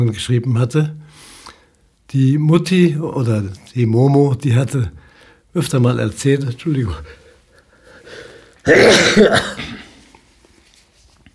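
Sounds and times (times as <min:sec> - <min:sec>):
speech: 0:00.0 - 0:01.3, 0:02.1 - 0:07.2, 0:08.1 - 0:09.7
harsh throaty cough: 0:08.6 - 0:10.1
softer rasping clearing of the throat: 0:08.6 - 0:10.1.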